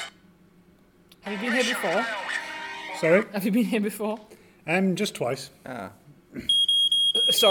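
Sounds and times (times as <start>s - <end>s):
speech: 1.3s - 2.4s, 3.0s - 6.6s
smoke alarm beeping: 6.5s - 7.4s.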